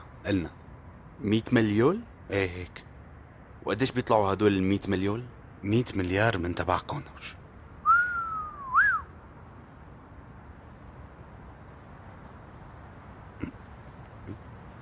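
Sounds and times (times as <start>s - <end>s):
speech: 0.2s - 0.6s, 1.2s - 2.9s, 3.6s - 7.4s
bird whistling outside: 7.8s - 9.1s.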